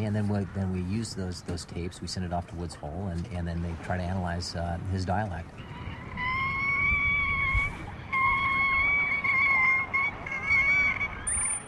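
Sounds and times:
speech: 0.0s - 5.8s
killer whale calls underwater: 5.5s - 11.6s.

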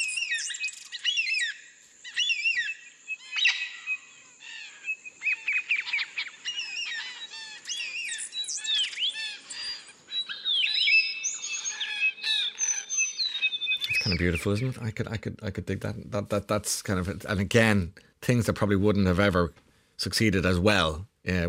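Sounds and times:
Australian wild birds whistling, chirping and squawking: 0.0s - 14.9s
speech: 14.1s - 21.4s.

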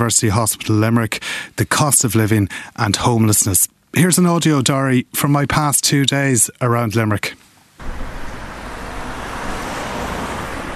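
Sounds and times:
speech: 0.0s - 8.0s
dense road traffic rumble heard from a moving vehicle: 7.8s - 10.7s
low engine hum: 7.8s - 10.7s.

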